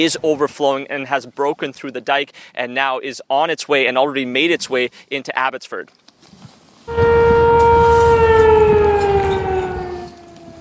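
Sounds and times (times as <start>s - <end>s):
speech: 0.0s - 6.0s
flood warning siren wailing in Sumas, Washington State: 6.9s - 10.5s.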